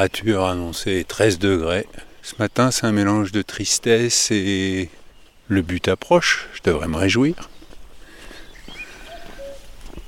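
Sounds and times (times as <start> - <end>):
speech: 0.0 - 7.5
steady outdoor noise: 0.0 - 10.0
common cuckoo two-note call: 8.4 - 10.0.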